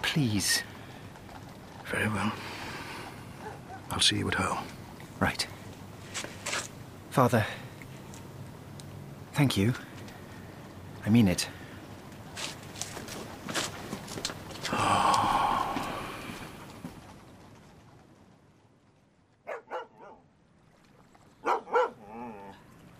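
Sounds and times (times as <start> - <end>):
speech: 0.1 - 0.7, 1.9 - 2.6, 3.9 - 5.6, 7.2 - 7.6, 9.4 - 9.9, 11.0 - 11.6
dog barking: 3.4 - 3.9, 19.4 - 20.2, 21.4 - 22.2
rustling and shuffling: 4.6 - 6.8, 9.9 - 18.5.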